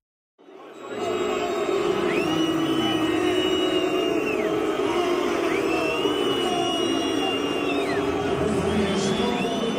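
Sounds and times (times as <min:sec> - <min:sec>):
huge stadium crowd booing: 0:00.4 - 0:09.7
people shouting in stadium crowd: 0:00.6 - 0:09.7
scattered whistles in stadium crowd: 0:02.0 - 0:04.6, 0:05.4 - 0:09.7.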